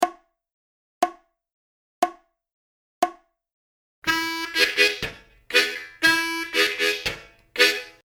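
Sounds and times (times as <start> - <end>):
country style blues lick on harmonica: 4.1 - 8.0.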